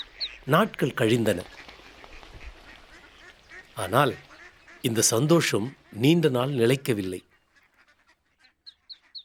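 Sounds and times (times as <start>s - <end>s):
steady hiss: 0.0s - 9.1s
speech: 0.5s - 1.6s, 3.8s - 7.3s
mother duck quacking: 1.4s - 6.5s, 7.3s - 9.2s.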